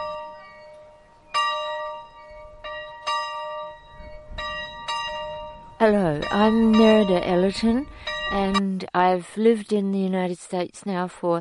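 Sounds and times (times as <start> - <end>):
school bell ringing at a preserved one-room schoolhouse in Boone County: 0.0 - 8.6
speech: 5.8 - 11.3.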